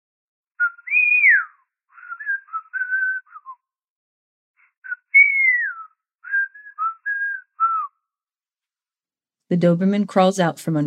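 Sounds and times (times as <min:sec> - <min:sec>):
Swedish people whistling a short tune on the other side of a door: 0:00.6 - 0:03.8, 0:04.8 - 0:08.2
speech: 0:09.5 - 0:10.8.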